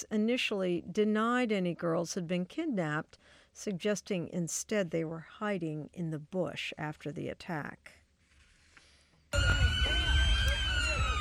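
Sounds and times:
speech: 0.0s - 8.0s, 9.3s - 10.0s
emergency vehicle sirens wailing: 9.4s - 11.1s.

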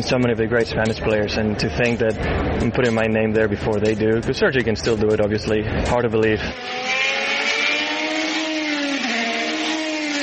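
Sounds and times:
speech: 0.0s - 7.1s
Formula One race car engines roaring: 5.6s - 10.2s.

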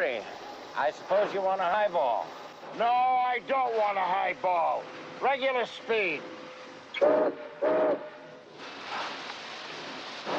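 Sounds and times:
speech: 0.0s - 6.3s, 7.0s - 8.1s
faint hiss: 0.0s - 10.3s
freight train rolling rumble getting under way: 0.0s - 10.3s
freight train whistle blasts: 7.0s - 8.4s.

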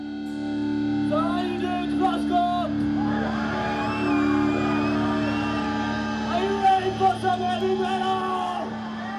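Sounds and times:
thick droning detuned distorted guitar: 0.0s - 9.1s
festival crowd roaring along: 2.9s - 9.1s.

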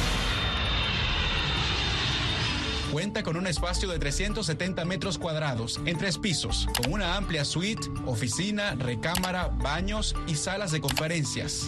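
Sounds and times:
presidential jet airplane engines roaring on takeoff: 0.0s - 3.6s
speech: 2.9s - 11.6s.

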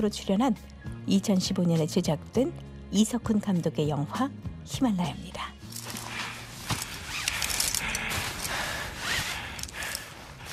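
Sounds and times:
speech: 0.0s - 5.6s
steady airy noise: 5.6s - 10.5s
heavy rough breathing while climbing: 6.0s - 10.5s.

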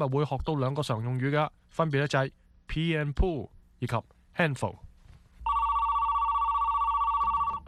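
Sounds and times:
speech: 0.0s - 4.8s
telephone ringing with an electronic warble: 5.4s - 7.6s.

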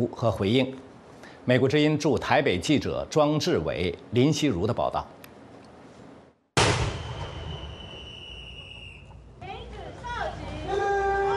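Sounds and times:
speech: 0.0s - 0.9s, 1.5s - 5.2s
cannon shot from a 21-gun salute in front of the Presidential Office in Taipei: 6.6s - 8.0s.

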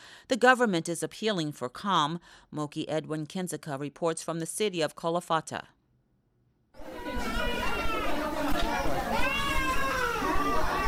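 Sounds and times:
speech: 0.3s - 5.8s
crowd noise at a mosque: 6.8s - 10.8s
infants wailing at a mosque: 6.8s - 10.8s.

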